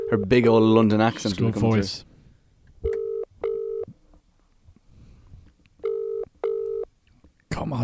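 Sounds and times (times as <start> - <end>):
phone ringing out on the line: 0.0 - 0.4, 2.8 - 3.9, 5.8 - 6.9
speech: 0.1 - 2.1, 7.6 - 7.8.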